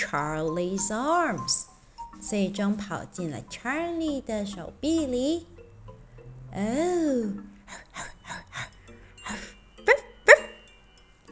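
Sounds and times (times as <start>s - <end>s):
speech: 0.0s - 5.5s, 6.5s - 8.1s
rescue dog barking: 9.9s - 10.6s.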